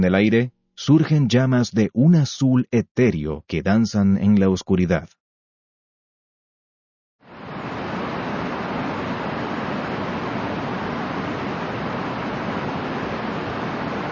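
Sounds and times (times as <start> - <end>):
speech: 0.0 - 5.2
waterfall in Java roaring: 7.3 - 14.1.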